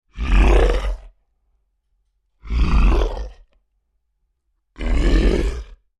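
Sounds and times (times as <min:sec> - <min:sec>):
large monster creature grunting aggressively: 0:00.1 - 0:01.1, 0:02.4 - 0:03.5, 0:04.8 - 0:05.8.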